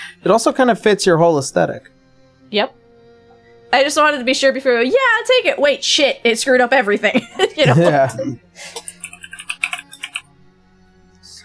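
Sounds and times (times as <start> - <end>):
speech: 0.2 - 2.8, 3.7 - 8.9
laughter: 7.0 - 10.2
typing on a computer keyboard: 8.8 - 10.3.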